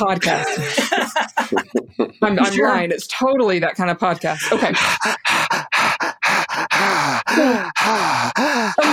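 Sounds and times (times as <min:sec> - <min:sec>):
speech: 0:00.0 - 0:01.1, 0:02.2 - 0:05.3, 0:07.4 - 0:08.9
laughter: 0:00.0 - 0:02.6, 0:04.2 - 0:06.1
heavy gasps and exhales with a voiced groaning tone: 0:04.4 - 0:08.9
people taking a deep breath in together: 0:04.7 - 0:08.9.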